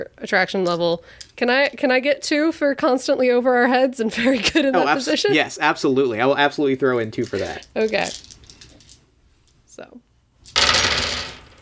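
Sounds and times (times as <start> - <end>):
speech: 0.0 - 8.3
handful of dice rattling and clattering onto a surface: 7.2 - 9.0, 10.5 - 11.5.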